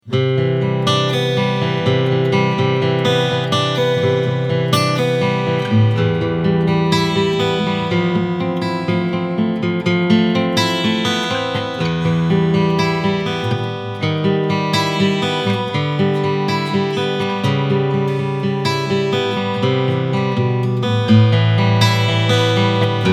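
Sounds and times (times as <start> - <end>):
Takamine GN51 acoustic guitar picking pattern: 0.0 - 23.1.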